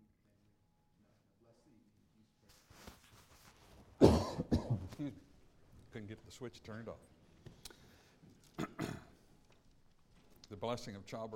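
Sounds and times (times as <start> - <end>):
person coughing while choking after taking a drink of water: 4.0 - 5.0, 8.6 - 9.2
throat clearing: 4.0 - 5.1, 8.5 - 9.2
speech: 5.0 - 5.3, 6.0 - 7.2, 10.5 - 11.3.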